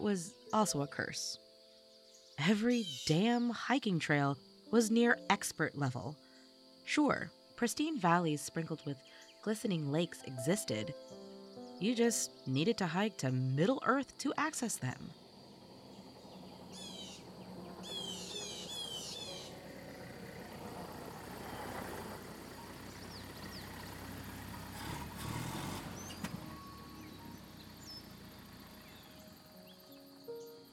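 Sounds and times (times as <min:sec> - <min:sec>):
speech: 0:00.0 - 0:01.4, 0:02.4 - 0:06.2, 0:06.9 - 0:11.2, 0:11.8 - 0:15.2
birds chirping: 0:01.9 - 0:03.6, 0:08.0 - 0:24.7, 0:25.9 - 0:30.7
faint rattles: 0:15.2 - 0:22.8
truck with a bed full of firewood idling: 0:15.2 - 0:29.8.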